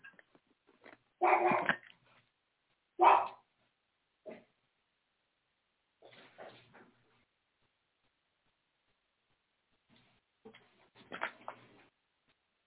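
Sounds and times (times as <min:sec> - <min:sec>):
dog barking: 0:01.2 - 0:01.7, 0:03.0 - 0:03.4.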